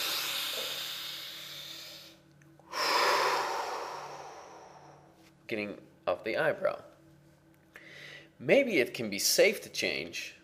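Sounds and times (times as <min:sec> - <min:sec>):
deep breath taken during a guided relaxation exercise: 0:00.0 - 0:05.2, 0:07.7 - 0:08.4
speech: 0:05.5 - 0:06.9, 0:08.4 - 0:10.4.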